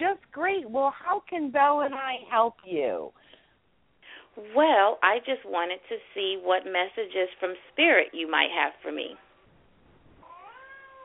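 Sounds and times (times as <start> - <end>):
speech: 0.5 - 3.2, 4.4 - 9.2
cat meowing: 10.2 - 11.0.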